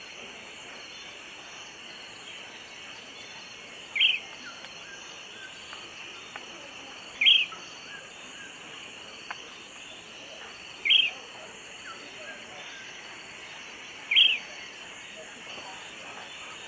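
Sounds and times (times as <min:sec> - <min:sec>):
bird call with short sharp high notes: 0:04.0 - 0:05.0, 0:07.2 - 0:08.1, 0:10.8 - 0:11.2, 0:14.1 - 0:14.6.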